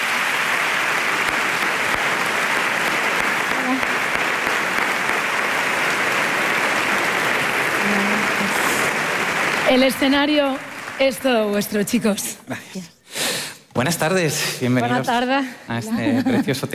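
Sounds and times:
large crowd applauding to welcome performers to stage: 0.0s - 12.3s
speech: 9.7s - 13.0s, 13.8s - 16.7s.

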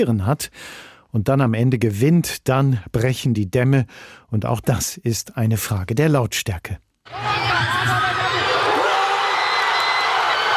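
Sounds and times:
speech: 0.0s - 8.0s
huge crowd of football fans cheering a goal at a fan zone: 7.1s - 10.5s.

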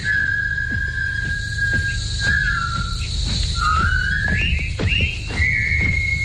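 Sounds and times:
high insect-like buzz: 0.0s - 6.2s
several people whistling a jaunty military march: 0.0s - 6.2s.

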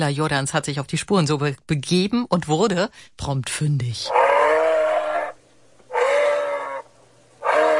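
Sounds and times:
speech: 0.0s - 4.2s
moose grunting in Grünheide Brandenburg Germany: 4.1s - 7.7s.

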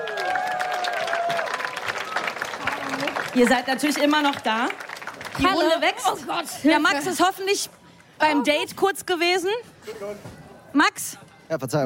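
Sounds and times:
audience applause: 0.0s - 6.3s
speech: 3.4s - 4.8s, 5.4s - 11.8s.

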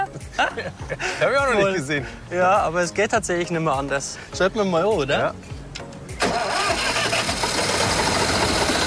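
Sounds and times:
speech: 0.4s - 5.5s
car engine started with a screwdriver in place of the ignition key: 6.2s - 8.8s.

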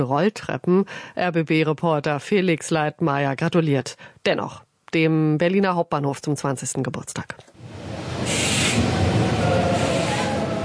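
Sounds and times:
speech: 0.0s - 8.9s
high-speed train pulling into station with low rumble: 7.6s - 10.6s
loud hiss of air bursting out of train: 8.2s - 10.4s.

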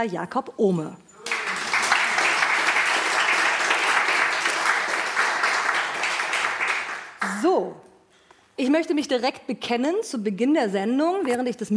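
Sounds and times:
speech: 0.0s - 1.0s, 7.3s - 7.9s, 8.6s - 11.7s
audience applause: 1.2s - 7.4s.

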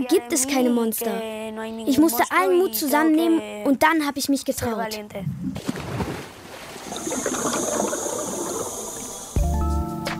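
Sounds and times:
speech: 0.0s - 5.8s
underwater bubbling and gurgling water in the sea: 6.6s - 9.4s.

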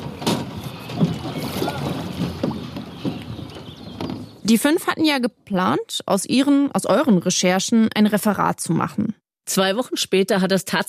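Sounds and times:
rowing boat oar strokes and splashes on a river: 0.0s - 4.4s
breezy watery river background: 0.0s - 9.7s
speech: 4.5s - 10.8s.

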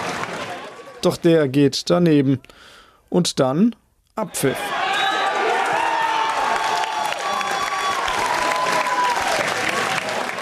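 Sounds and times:
crowd of football fans cheering and applauding: 0.0s - 1.2s, 4.5s - 10.3s
speech: 1.0s - 4.8s
shouts and whoops from football fans: 4.5s - 10.3s.

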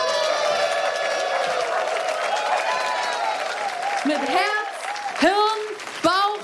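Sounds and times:
large audience applause: 0.0s - 6.4s
people cheering: 0.0s - 6.4s
speech: 4.0s - 4.6s.

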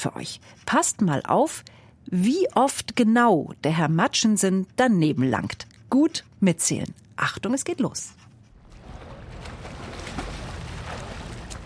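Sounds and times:
speech: 0.0s - 8.3s
wind rumble: 8.5s - 11.6s
small boat moving on open water: 8.6s - 11.6s.

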